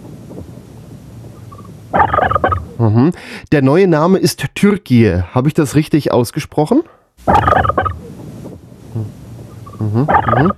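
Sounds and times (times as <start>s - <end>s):
turkey gobbling: 1.6s - 2.8s, 7.2s - 8.1s, 10.0s - 10.5s
speech: 1.9s - 8.0s, 9.8s - 10.5s.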